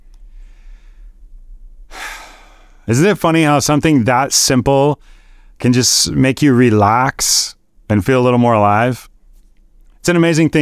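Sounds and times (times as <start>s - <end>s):
deep breath: 0.0s - 2.9s, 5.0s - 5.6s
steady low hum: 0.0s - 10.5s
speech: 2.9s - 9.1s, 10.0s - 10.5s.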